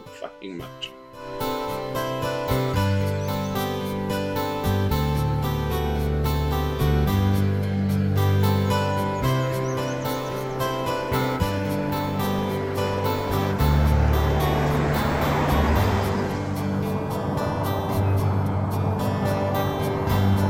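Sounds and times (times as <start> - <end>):
road noise: 0.0 - 20.4
speech: 0.2 - 2.0
car engine rumble in a film scene: 2.0 - 20.4.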